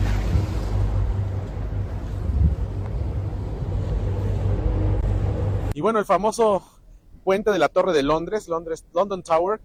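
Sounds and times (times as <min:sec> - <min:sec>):
rushing wind on a boat on a cloudy rainy morning: 0:00.0 - 0:05.8
steady low engine rumble of a river ferry boat on the River Thames: 0:00.0 - 0:05.8
speech: 0:05.8 - 0:09.6.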